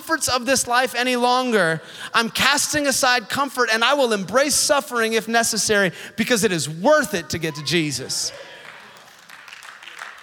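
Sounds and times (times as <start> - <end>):
speech: 0.1 - 8.5
audience applause: 8.3 - 10.2.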